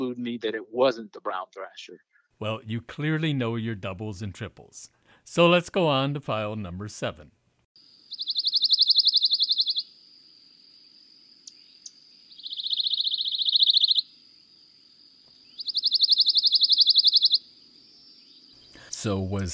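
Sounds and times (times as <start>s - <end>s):
speech: 0.0s - 7.4s, 19.0s - 19.5s
pine warbler dry rapid buzzy trill: 8.0s - 9.9s, 11.8s - 14.1s, 15.4s - 17.4s.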